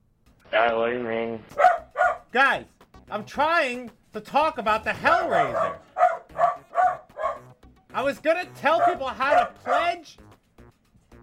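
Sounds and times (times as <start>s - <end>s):
speech: 0.5s - 1.7s, 2.3s - 5.9s, 8.0s - 10.2s
dog barking: 1.5s - 2.3s, 5.2s - 7.6s, 8.6s - 10.0s.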